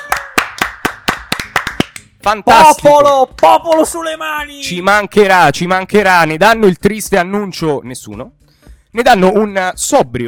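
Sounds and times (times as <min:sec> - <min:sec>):
hands clapping: 0:00.0 - 0:04.1
speech: 0:02.2 - 0:10.2.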